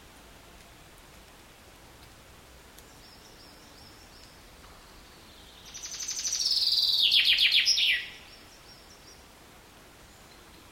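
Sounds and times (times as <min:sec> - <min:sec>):
common chaffinch singing: 0:02.8 - 0:09.3.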